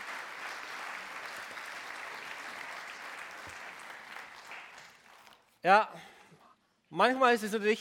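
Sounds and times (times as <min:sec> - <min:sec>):
crowd applauding with many hands clapping: 0:00.0 - 0:05.5
speech: 0:05.6 - 0:06.1, 0:06.9 - 0:07.8.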